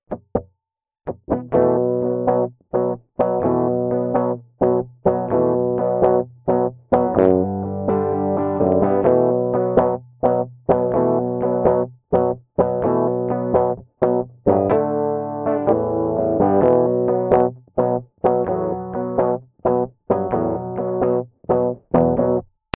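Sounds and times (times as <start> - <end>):
small combo lead melody: 1.1 - 22.4.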